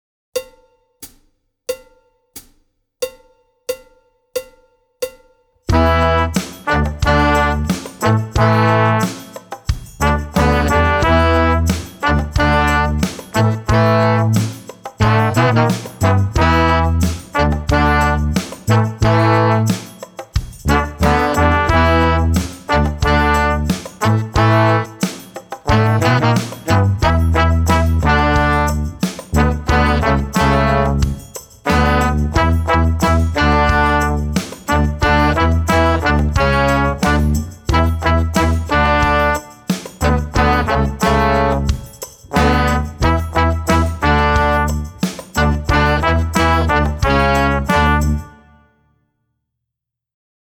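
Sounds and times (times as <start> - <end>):
brass song: 5.7 - 48.7.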